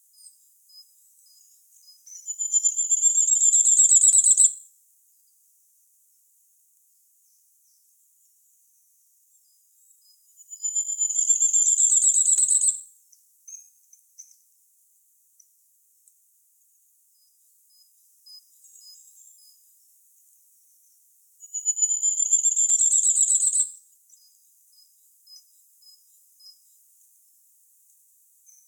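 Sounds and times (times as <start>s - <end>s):
common firecrest singing: 0.0s - 4.6s, 7.2s - 14.6s, 17.1s - 28.6s.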